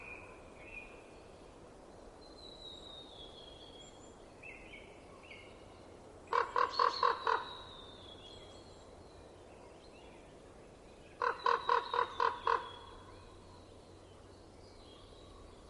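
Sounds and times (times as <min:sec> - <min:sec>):
common raven croaking in winter in Estonia: 0:06.3 - 0:07.5, 0:11.2 - 0:13.0.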